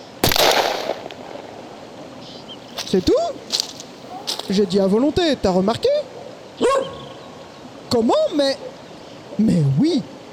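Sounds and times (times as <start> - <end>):
rifles firing at will: 0.2 - 1.8
speech: 2.9 - 3.7, 4.5 - 6.0, 8.0 - 8.7, 9.4 - 10.1.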